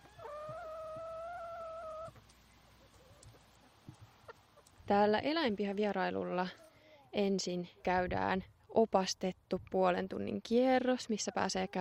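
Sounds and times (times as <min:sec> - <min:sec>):
chicken calling: 0:00.0 - 0:04.7
speech: 0:04.9 - 0:11.7.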